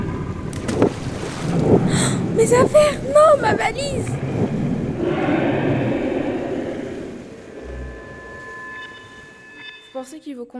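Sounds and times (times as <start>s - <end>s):
rough stormy wind buffeting a boat: 0.0s - 8.5s
waves surging and sloshing around a boat hull: 0.0s - 9.5s
speech: 1.9s - 4.2s, 10.0s - 10.5s.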